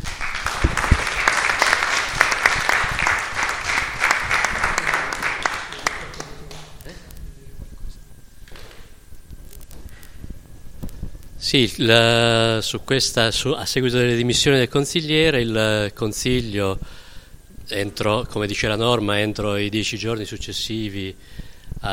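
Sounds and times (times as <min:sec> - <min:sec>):
audience clapping at a town council meeting: 0:00.0 - 0:06.9
speech: 0:11.5 - 0:17.0, 0:17.7 - 0:21.9.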